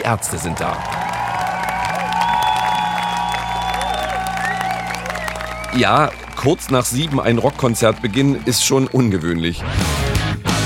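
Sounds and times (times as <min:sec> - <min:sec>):
scattered whoops from concert crowd: 0:00.0 - 0:09.6
large crowd at a rock concert cheering and applauding: 0:00.0 - 0:10.6
speech: 0:00.1 - 0:01.0, 0:05.7 - 0:10.1
sustained tones: 0:00.7 - 0:09.1.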